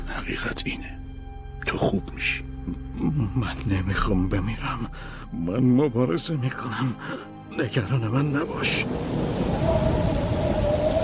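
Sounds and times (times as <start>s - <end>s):
speech: 0.2s - 1.0s, 1.6s - 9.9s
heavy rain and hail: 7.8s - 11.0s
faint whistling tone: 9.4s - 11.0s.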